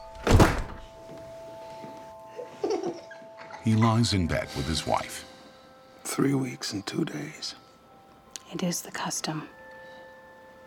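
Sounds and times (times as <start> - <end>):
door being pulled shut: 0.2 - 0.8
speech: 3.6 - 5.3, 6.2 - 7.6, 8.5 - 9.6.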